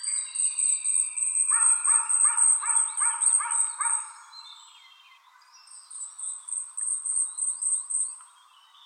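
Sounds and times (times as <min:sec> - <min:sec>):
Asian stubtail singing high sibilant ticking notes: 0:00.0 - 0:08.8.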